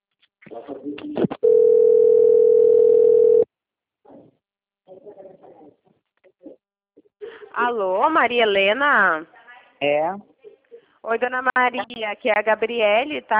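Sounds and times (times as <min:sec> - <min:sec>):
voices: 0:00.4 - 0:01.4, 0:04.1 - 0:07.6
speech: 0:00.6 - 0:01.2, 0:07.7 - 0:10.3, 0:11.1 - 0:13.3
telephone ringing tone as an outgoing call connects: 0:01.4 - 0:03.5.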